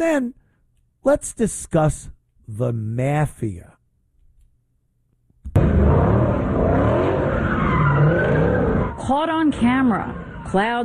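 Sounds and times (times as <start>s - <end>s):
speech: 0.0s - 0.4s, 1.0s - 3.8s, 9.0s - 10.8s
car engine roaring: 5.6s - 10.7s
car tires screeching as a car spins: 5.6s - 10.8s.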